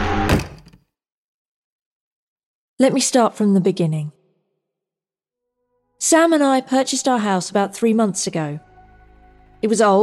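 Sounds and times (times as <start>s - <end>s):
bedroom door slamming shut: 0.0s - 0.8s
speech: 2.8s - 4.2s, 6.0s - 8.7s, 9.6s - 10.0s.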